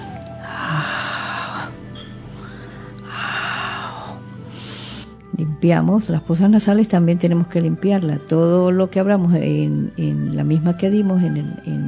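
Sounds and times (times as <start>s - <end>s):
forceful breaths in jado kikyo vibratory breathing exercise: 0.4s - 5.2s
speech: 5.4s - 11.8s.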